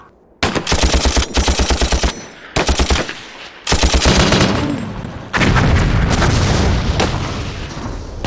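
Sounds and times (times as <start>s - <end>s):
rapid machine gun fire in a battle assault: 0.4s - 6.6s
heavy continuous roar of massed fire with deep booms: 0.4s - 8.2s.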